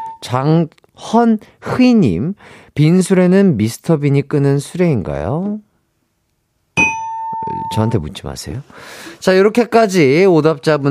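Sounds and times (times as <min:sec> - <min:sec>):
speech: 0:00.2 - 0:05.7, 0:07.7 - 0:10.8
bright bell-like ding-dong-dang quiz answer chime: 0:06.8 - 0:08.0.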